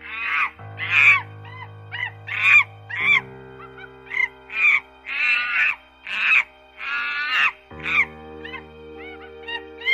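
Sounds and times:
bonobo calls of high-pitched shrieks and squeals: 0.0s - 9.9s.

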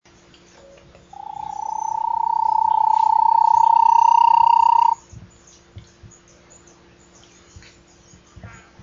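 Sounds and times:
Bahia tapaculo rapid trill: 1.2s - 5.0s.

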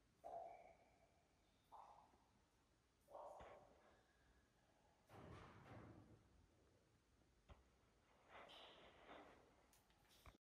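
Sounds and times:
basement ambience: 0.0s - 10.3s.

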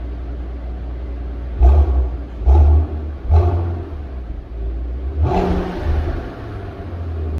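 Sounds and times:
Maybach car exhaust: 0.0s - 7.3s.

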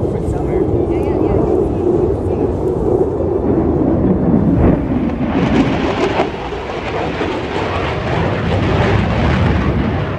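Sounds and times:
sonic boom from breaking the sound barrier: 0.1s - 10.0s.

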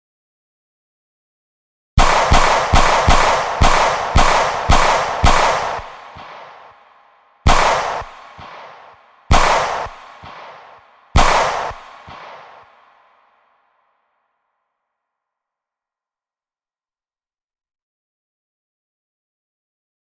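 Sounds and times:
pistol gunshot: 2.0s - 6.8s, 7.4s - 13.0s.

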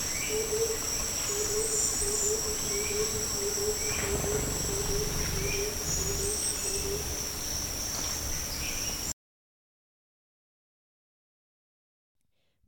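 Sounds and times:
gilded barbet calling: 0.1s - 9.1s.

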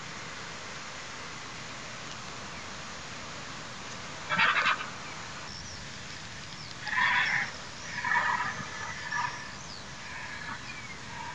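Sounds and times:
background hiss: 0.0s - 11.3s
Cape vulture cackling calls: 4.2s - 5.0s, 6.8s - 11.3s.

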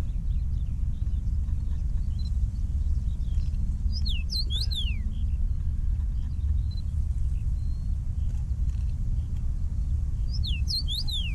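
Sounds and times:
deep background rumble: 0.0s - 11.3s
common rosefinch calling: 3.9s - 5.0s, 10.2s - 11.3s.

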